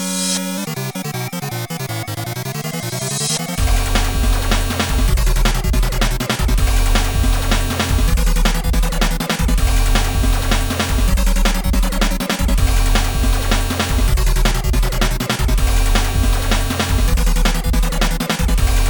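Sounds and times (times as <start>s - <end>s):
rising sweeping electronic tone from an early video game console: 0.0s - 5.1s
loud dense chiptune tune with bouncy bass line and buzzy melody: 0.0s - 18.8s.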